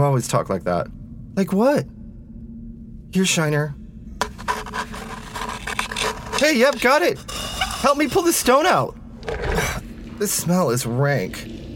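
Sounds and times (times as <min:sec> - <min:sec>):
speech: 0:00.0 - 0:02.0, 0:03.1 - 0:03.8, 0:06.4 - 0:09.0, 0:10.2 - 0:11.5
all-purpose drill file saw rasping: 0:04.2 - 0:08.6.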